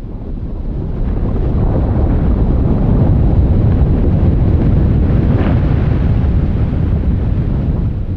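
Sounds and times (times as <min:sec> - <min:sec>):
huge glacier the size of Manhattan cracking apart in Greenland: 0:00.0 - 0:08.1.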